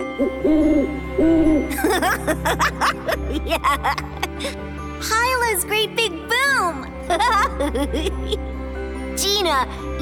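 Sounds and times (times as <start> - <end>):
owl hooting: 0.0 - 1.7
speech: 0.2 - 8.6, 9.2 - 10.0
laughter: 1.7 - 4.6, 7.1 - 8.4.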